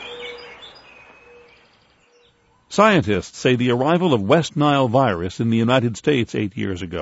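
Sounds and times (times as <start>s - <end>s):
several birds singing and chirping in a spring chorus in North America: 0.0s - 3.0s
speech: 2.8s - 7.0s.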